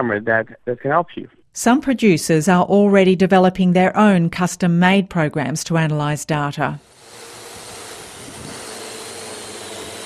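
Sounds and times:
speech: 0:00.0 - 0:06.9
small aerial drone hovering with high-pitched motor whine over New Zealand sheep farm: 0:06.7 - 0:10.0.

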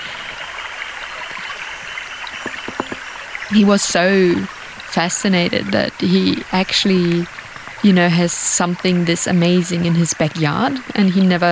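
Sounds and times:
creek water flowing: 0:00.0 - 0:11.5
speech: 0:03.5 - 0:11.5.

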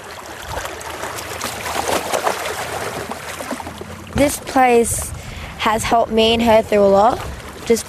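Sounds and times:
choppy ocean water sloshing and splashing: 0:00.0 - 0:07.8
speech: 0:04.2 - 0:07.8.

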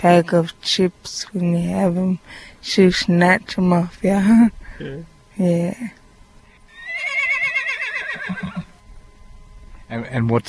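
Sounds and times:
speech: 0:00.0 - 0:06.0, 0:08.3 - 0:08.7, 0:09.9 - 0:10.4
horse whinnying: 0:06.7 - 0:08.8.

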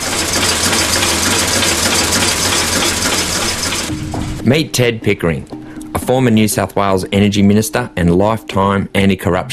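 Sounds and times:
prototype single-cylinder diesel engine running on a bench in a shed: 0:00.0 - 0:04.8
speech: 0:04.4 - 0:09.5.

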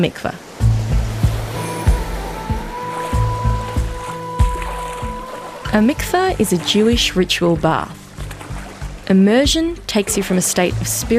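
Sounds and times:
speech: 0:00.0 - 0:00.4, 0:05.7 - 0:08.0, 0:09.1 - 0:11.1
ocean water sloshing against a beach in Brighton at night: 0:00.0 - 0:11.1.

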